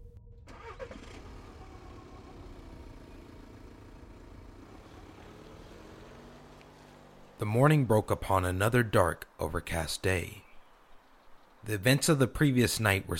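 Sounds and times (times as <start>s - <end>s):
car engine cranking, starting and idling: 0.0s - 9.8s
speech: 7.4s - 10.4s, 11.6s - 13.1s.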